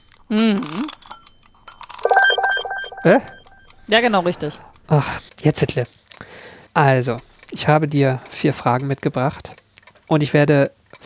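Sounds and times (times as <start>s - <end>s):
speech: 0.3s - 0.9s, 3.0s - 6.0s, 6.8s - 11.0s
mechanical alarm clock bell ringing: 2.0s - 3.7s.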